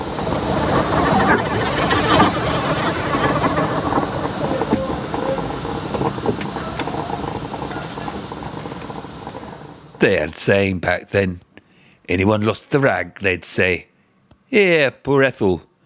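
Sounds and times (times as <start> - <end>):
steam locomotive running on rails: 0.0 - 10.9
speech: 10.0 - 11.5, 12.1 - 13.9, 14.5 - 15.7.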